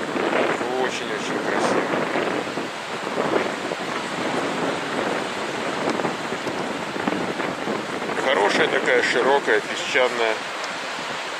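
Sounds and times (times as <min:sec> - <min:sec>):
sea waves rolling onto shore: 0:00.0 - 0:11.3
speech: 0:08.5 - 0:10.5.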